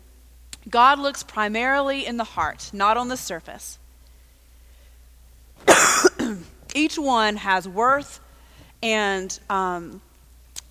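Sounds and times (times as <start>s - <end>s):
speech: 0.6s - 3.8s, 6.3s - 8.2s, 8.8s - 10.1s
harsh cough: 5.6s - 6.7s.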